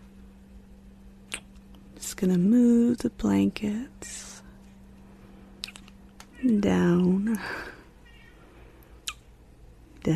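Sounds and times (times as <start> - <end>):
speech: 2.2 - 4.2, 6.4 - 7.8
faint cat meow: 8.0 - 8.4.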